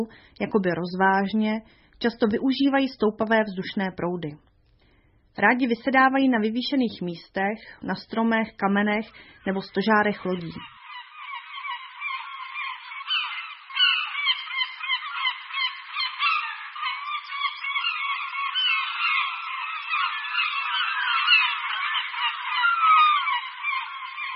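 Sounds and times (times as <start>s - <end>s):
speech: 0.0s - 4.5s, 5.4s - 10.8s
chorus of herring gulls crying and squawking: 9.2s - 24.3s.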